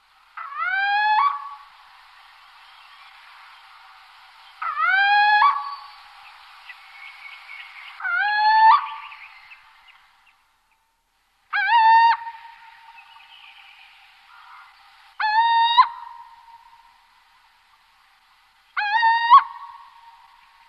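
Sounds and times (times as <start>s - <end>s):
little owl territorial call: 0.4s - 1.8s, 4.6s - 10.0s, 11.5s - 17.1s, 18.8s - 20.6s.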